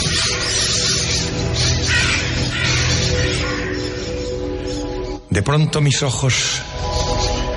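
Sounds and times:
large flock of crows cawing: 0.0s - 5.2s
speech: 5.4s - 6.7s.

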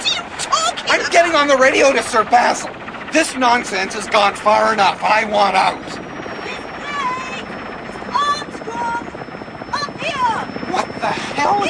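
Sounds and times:
helicopter rotor noise with a high whine: 0.0s - 11.6s
speech: 1.2s - 5.9s, 11.0s - 11.6s.

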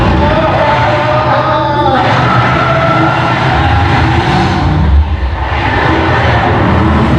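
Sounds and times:
car speeding with engine revving: 0.0s - 7.1s.

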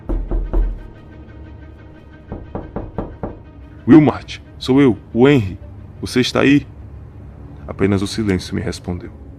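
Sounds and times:
knocking on a wooden door: 0.0s - 1.0s, 2.2s - 3.6s
speech: 3.9s - 6.7s, 7.7s - 9.2s.

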